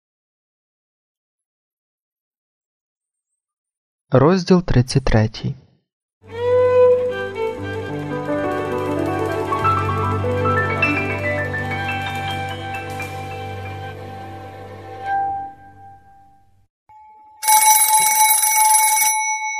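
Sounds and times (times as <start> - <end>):
speech: 4.1 - 5.6
sustained tonal musical passage: 6.2 - 16.3
loud telephone bell ring: 16.9 - 19.5.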